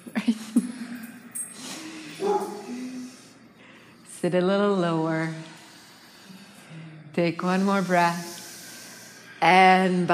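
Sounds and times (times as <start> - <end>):
dog barking: 2.2 - 2.7
speech: 4.2 - 5.5, 7.2 - 8.3, 9.4 - 10.1.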